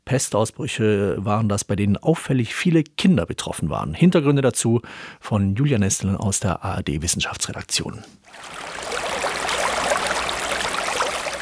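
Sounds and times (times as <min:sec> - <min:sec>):
speech: 0:00.1 - 0:08.8
river in Siberia flowing into Lake Baikal: 0:08.3 - 0:11.3.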